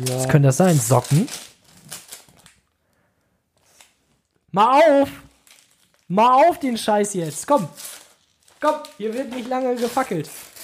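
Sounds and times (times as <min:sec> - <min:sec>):
speech: 0:00.0 - 0:01.5, 0:04.6 - 0:05.2, 0:06.1 - 0:08.0, 0:08.6 - 0:10.5
gift-wrapping paper sealed with sticky tape being torn open: 0:00.0 - 0:02.6, 0:05.3 - 0:10.6.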